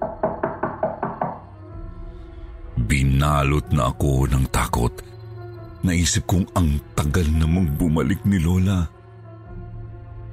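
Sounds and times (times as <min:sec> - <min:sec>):
knocking on a door: 0:00.0 - 0:01.5
speech: 0:02.9 - 0:05.1, 0:05.8 - 0:08.9.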